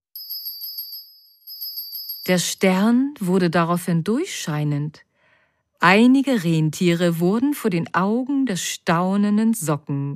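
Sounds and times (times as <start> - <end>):
bell ringing with a bright high sustained tone: 0.0 - 2.9
speech: 2.3 - 5.1, 5.8 - 10.1.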